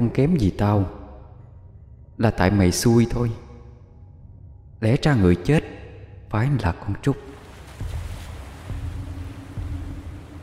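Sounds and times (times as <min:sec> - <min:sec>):
speech: 0:00.0 - 0:01.0, 0:02.2 - 0:03.4, 0:04.8 - 0:07.3
angry sea waves surging: 0:07.2 - 0:10.4
low thuds of rough water rocking a small boat: 0:07.3 - 0:10.4.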